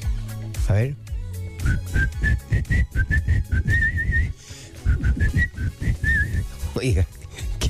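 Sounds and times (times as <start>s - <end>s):
low pulsing rhythmic backing: 0.0s - 7.6s
speech: 0.7s - 7.2s
person whistling a lilting tune: 1.6s - 6.6s.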